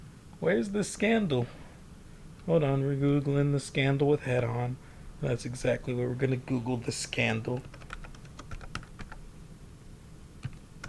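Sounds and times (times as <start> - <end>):
speech: 0.4 - 1.6, 2.4 - 7.8
computer keyboard typing: 7.6 - 9.2, 10.4 - 10.8.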